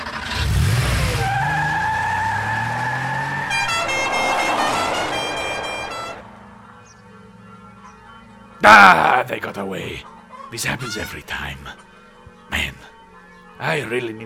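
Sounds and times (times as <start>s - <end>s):
car engine roaring and revving as it speeds away: 0.0s - 6.6s
tires screeching: 0.0s - 6.6s
steady high whine: 2.8s - 6.5s
speech: 8.6s - 11.9s, 13.6s - 14.2s.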